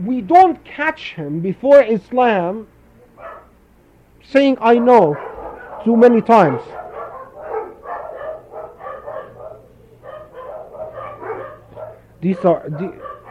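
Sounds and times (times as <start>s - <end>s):
speech: 0.0s - 2.7s, 4.2s - 6.8s, 12.2s - 13.1s
dogs barking and yipping: 3.0s - 3.6s, 4.6s - 13.3s.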